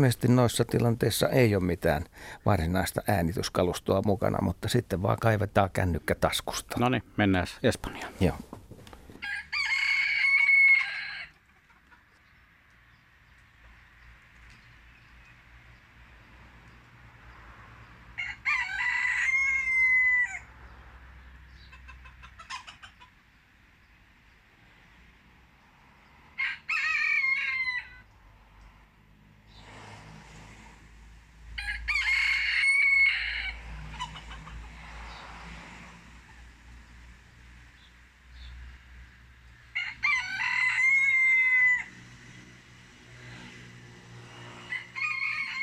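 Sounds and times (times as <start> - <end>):
speech: 0.0 - 8.6
rooster crowing in Spain recorded on a mobile phone: 9.2 - 11.4, 18.1 - 20.5, 26.4 - 28.1, 31.6 - 34.8, 39.7 - 42.0, 44.6 - 45.6.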